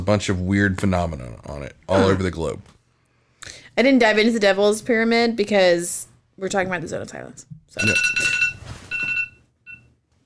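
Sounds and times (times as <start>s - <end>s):
speech: 0.1s - 2.8s, 3.4s - 8.3s
phone alarm chirping in high-pitched electronic bursts: 7.8s - 9.9s.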